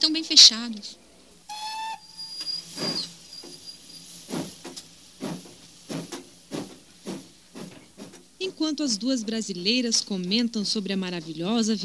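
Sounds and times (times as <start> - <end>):
speech: 0.0 - 1.0, 8.6 - 11.8
thin high steam hiss: 1.0 - 8.6
shrill passenger train whistle blast in Italy: 1.5 - 3.8
steam engine chuffing as passenger train departs: 1.5 - 11.4.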